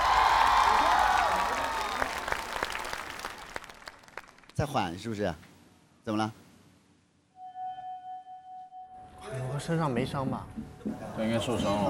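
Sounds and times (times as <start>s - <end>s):
audience cheering: 0.0s - 3.8s
audience applause: 0.0s - 4.6s
speech: 4.6s - 6.4s, 9.6s - 11.8s.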